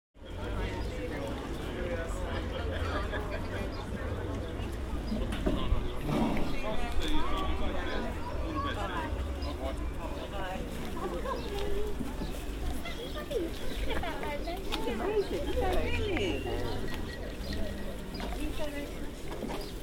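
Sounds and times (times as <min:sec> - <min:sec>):
harbour ambience outside a fish shop in Whitstable: 0:00.2 - 0:19.8.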